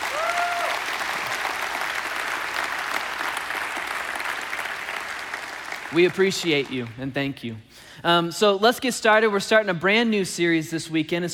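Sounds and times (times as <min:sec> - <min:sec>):
large audience applauding: 0:00.0 - 0:07.0
speech: 0:05.9 - 0:11.3.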